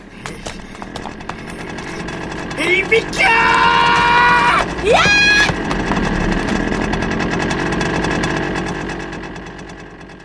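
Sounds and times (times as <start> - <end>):
motorcycle engine revving as it is ridden at the speaker in a dead-end alley: 0.0 - 10.2
speech: 2.7 - 3.6, 4.8 - 5.2.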